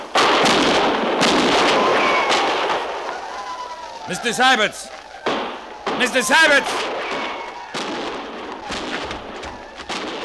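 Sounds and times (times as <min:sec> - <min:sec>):
gunfire in a canyon: 0:00.0 - 0:03.2, 0:05.2 - 0:10.2
speech: 0:04.1 - 0:05.0, 0:06.0 - 0:07.0.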